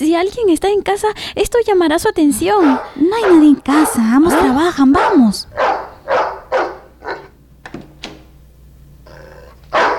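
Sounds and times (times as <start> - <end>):
speech: 0.0 - 5.7
dog barking: 2.5 - 7.4, 9.7 - 9.9.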